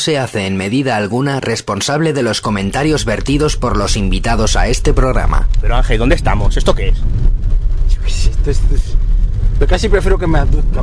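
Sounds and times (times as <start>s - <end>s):
speech: 0.0s - 7.2s, 8.0s - 9.0s, 9.6s - 10.8s
car rumbling along a rough tractor track: 2.3s - 10.8s.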